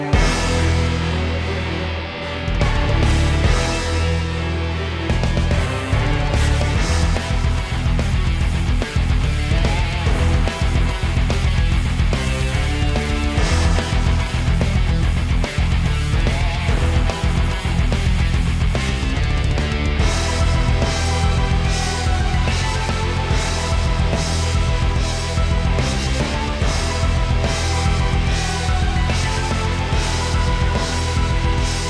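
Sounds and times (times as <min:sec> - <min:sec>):
boss battle metal music loop: 0:00.1 - 0:31.8.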